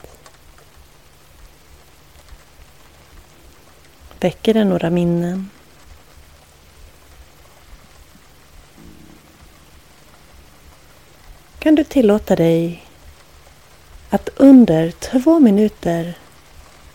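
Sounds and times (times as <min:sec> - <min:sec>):
steady rain pattering: 0:00.0 - 0:16.9
speech: 0:04.2 - 0:05.6, 0:11.7 - 0:12.8, 0:14.1 - 0:16.2.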